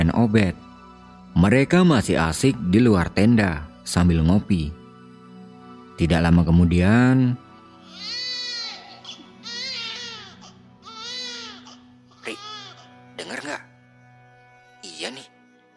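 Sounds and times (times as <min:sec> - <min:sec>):
speech: 0:00.0 - 0:00.6, 0:01.3 - 0:04.8, 0:06.0 - 0:07.4
infant crying at night at a mountain campsite on Mount Ciremai: 0:07.8 - 0:13.6.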